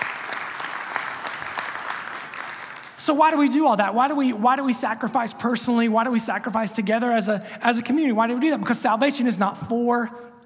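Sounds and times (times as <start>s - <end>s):
church congregation applauding: 0.0s - 3.0s
speech: 3.1s - 10.4s.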